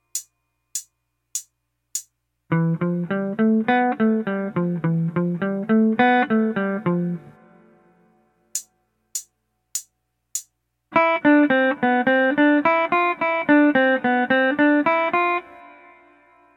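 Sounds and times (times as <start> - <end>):
guitar playing: 2.5 - 8.7, 10.9 - 16.4.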